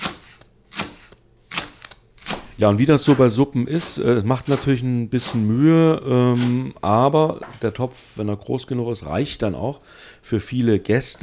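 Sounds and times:
knife chopping leek into fine strips on a board: 0.0s - 5.5s, 6.4s - 6.6s
speech: 2.6s - 11.2s.

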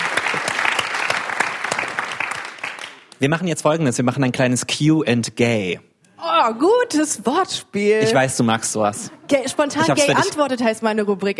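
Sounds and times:
crowd applauding: 0.0s - 3.2s
speech: 3.2s - 11.3s.

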